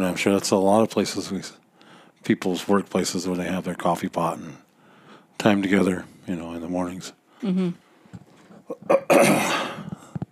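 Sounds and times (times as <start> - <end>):
speech: 0.0 - 1.6, 2.2 - 4.6, 5.4 - 9.8
short harsh cough: 8.7 - 10.0.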